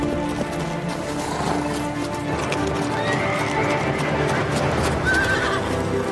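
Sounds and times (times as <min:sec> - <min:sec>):
horses carrying a group of riders, hooves clip-clopping: 0:00.0 - 0:06.1
horse whinnying: 0:01.0 - 0:05.9.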